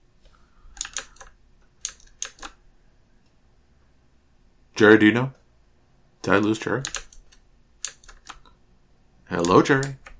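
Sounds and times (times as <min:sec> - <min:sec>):
typing on a mechanical keyboard: 0:00.8 - 0:02.6, 0:06.8 - 0:08.5, 0:09.4 - 0:10.1
speech: 0:04.8 - 0:05.4, 0:06.3 - 0:07.0, 0:09.3 - 0:10.0.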